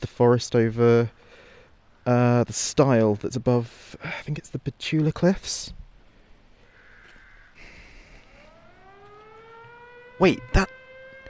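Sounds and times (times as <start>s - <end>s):
faint outdoor background: 0.0s - 11.2s
speech: 0.2s - 1.2s, 2.1s - 5.8s, 10.2s - 10.8s
harsh caw-like burst: 6.6s - 9.0s
town civil defense siren winding up: 8.0s - 11.2s.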